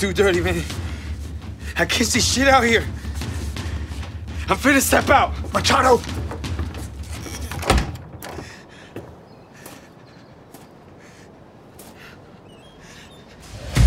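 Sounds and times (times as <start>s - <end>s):
speech: 0.0s - 0.9s, 1.8s - 3.0s, 4.5s - 6.2s
quiet shuffling: 0.0s - 13.6s
door opening with a creak and a clunk: 6.6s - 8.6s.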